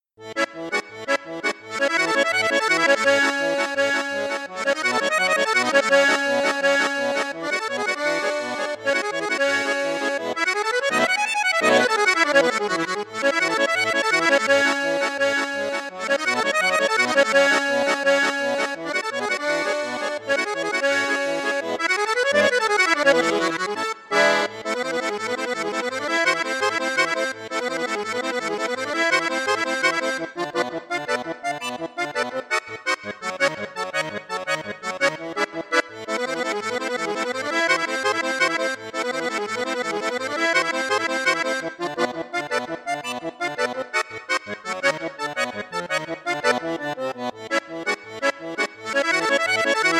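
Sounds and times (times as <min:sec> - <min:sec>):
Piermaria 312 accordion on bassoon and flute registers: 0:00.0 - 0:49.9.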